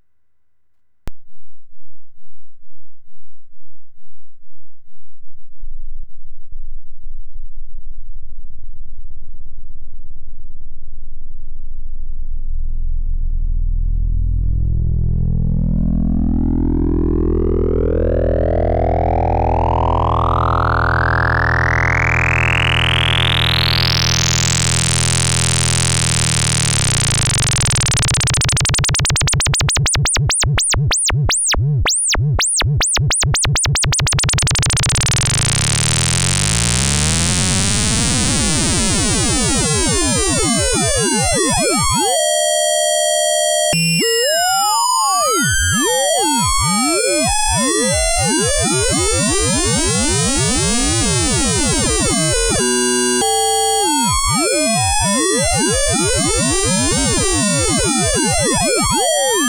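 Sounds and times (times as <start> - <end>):
DVCO sine cross-modulation synthesizer tone: 12.6 - 59.4.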